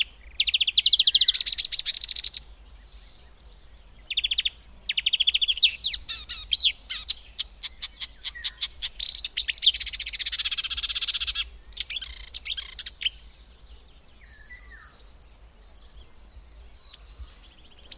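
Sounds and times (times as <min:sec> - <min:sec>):
Marsh warbler song with dense rattling chatter and long buzzy trill: 0:00.0 - 0:17.9.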